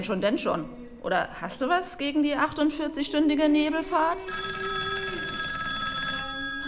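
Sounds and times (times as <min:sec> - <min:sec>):
speech: 0:00.0 - 0:04.8
telephone bell ringing with a bright metallic trill: 0:04.3 - 0:06.6.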